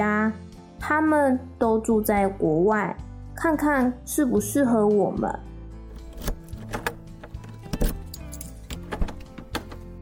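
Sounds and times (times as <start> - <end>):
speech: 0.0 - 5.5
door of a secondhand house being unlocked and opened: 5.9 - 10.0.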